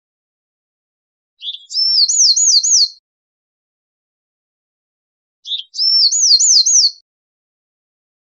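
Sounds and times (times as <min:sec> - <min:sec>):
Bewick's wren singing: 0:01.4 - 0:03.0, 0:05.4 - 0:07.0.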